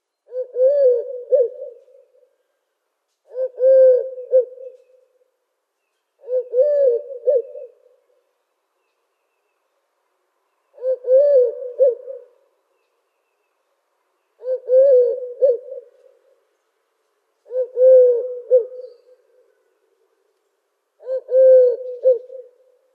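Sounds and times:
Eurasian Collared-Dove calls: 0.3 - 2.2, 3.3 - 5.0, 6.2 - 7.9, 10.7 - 12.4, 14.4 - 16.2, 17.4 - 19.3, 21.0 - 22.6.

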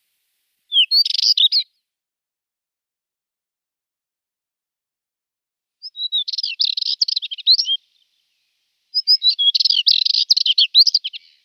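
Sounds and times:
spectacled warbler song: 0.0 - 1.9, 5.8 - 11.4.

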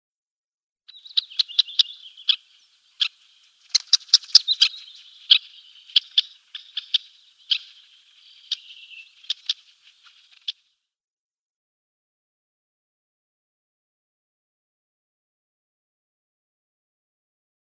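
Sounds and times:
Red-necked Phalarope calls: 0.9 - 10.7.

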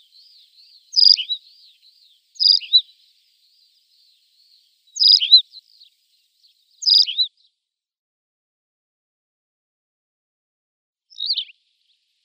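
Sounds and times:
thin faint twittering: 0.0 - 7.3
tawny pipit repeating short chirped song phrases: 0.0 - 7.5, 11.1 - 11.6.

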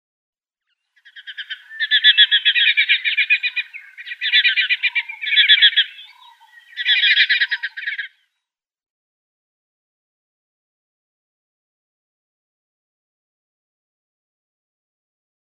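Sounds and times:
Banded Martin calls: 1.0 - 8.2.

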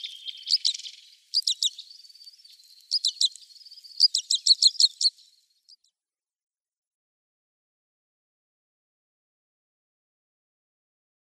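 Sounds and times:
common crossbill soft twittering: 0.0 - 5.8
common crossbill calls: 1.4 - 2.0, 2.8 - 5.2.

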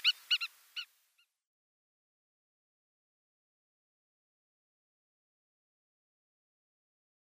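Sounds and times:
spur-winged lapwing pair calling in display: 0.0 - 1.3.

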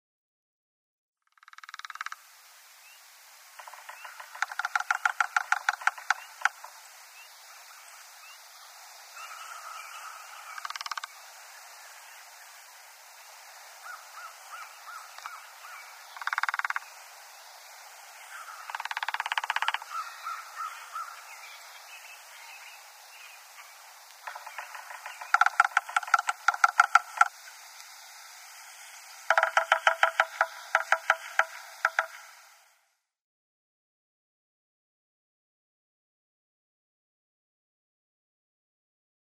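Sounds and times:
Yellow-bellied Sapsucker drumming: 1.2 - 2.3, 3.5 - 7.0, 9.2 - 11.2, 13.8 - 17.1, 18.2 - 21.2, 23.6 - 27.9, 29.0 - 32.4.

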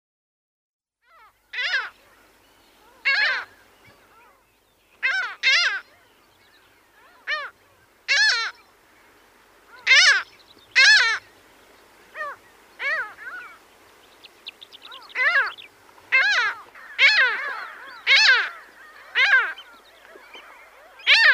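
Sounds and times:
Mediterranean gull nasal calls: 1.0 - 4.4, 5.0 - 6.1, 6.9 - 8.7, 9.6 - 11.3, 12.1 - 13.7, 14.5 - 21.3.

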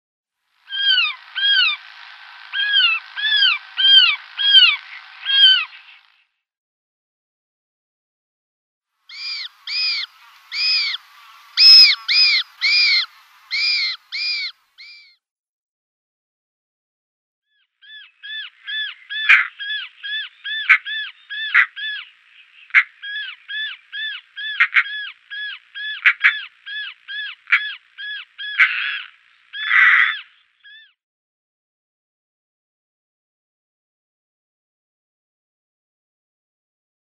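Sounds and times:
European Roller nestlings calling: 0.7 - 6.2, 9.1 - 15.1, 17.9 - 30.9.

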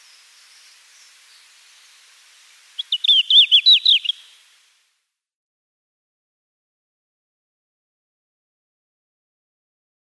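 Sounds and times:
faint background hiss: 0.0 - 5.3
red-flanked bluetail singing clear high slurred notes: 2.8 - 4.5.

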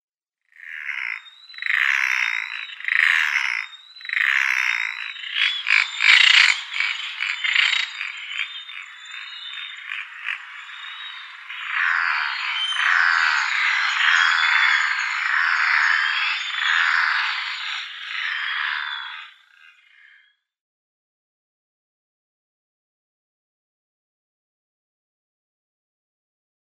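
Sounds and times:
brown noddy giving harsh croaking calls: 0.5 - 20.4.

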